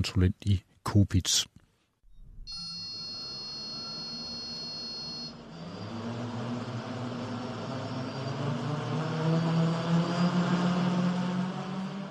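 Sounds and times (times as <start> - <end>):
speech: 0.0 - 1.6
quadcopter drone with spinning rotors buzzing: 2.5 - 12.1.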